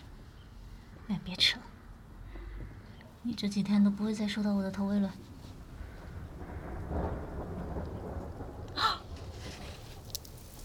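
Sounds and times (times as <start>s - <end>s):
speech: 1.1s - 1.7s, 3.2s - 5.3s
rain pattering: 3.2s - 10.6s
low rolling thunder: 4.2s - 10.6s.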